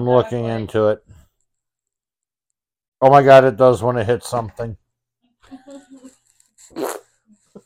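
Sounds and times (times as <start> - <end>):
speech: 0.0 - 1.1, 3.0 - 4.8, 6.7 - 7.0
toy car fart sound effect: 6.7 - 7.2.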